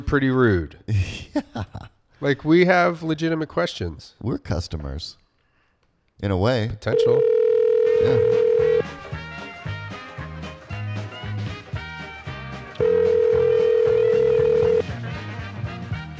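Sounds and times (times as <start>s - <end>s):
speech: 0.0s - 5.2s, 6.2s - 7.4s, 8.0s - 8.6s
outgoing phone call ringback tone: 6.9s - 8.9s, 12.8s - 14.9s
busy music: 7.7s - 16.1s.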